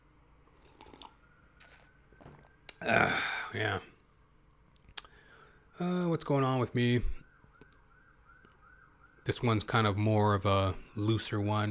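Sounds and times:
slurping sip of a drink: 0:00.5 - 0:01.9
mouth clicks: 0:02.6 - 0:02.9, 0:04.8 - 0:05.2
speech: 0:02.8 - 0:03.9, 0:05.8 - 0:07.2, 0:09.3 - 0:11.6.

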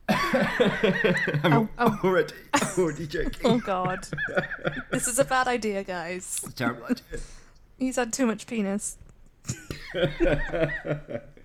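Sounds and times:
laughter: 0:00.1 - 0:05.6, 0:09.5 - 0:11.4
speech: 0:00.3 - 0:11.3
person coughing from peanuts stuck in the throat: 0:01.2 - 0:05.4, 0:09.5 - 0:11.1.

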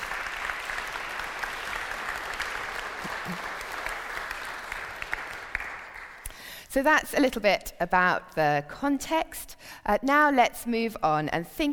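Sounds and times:
applause from a large group: 0:00.0 - 0:06.2
speech: 0:03.3 - 0:03.5, 0:06.8 - 0:11.7.

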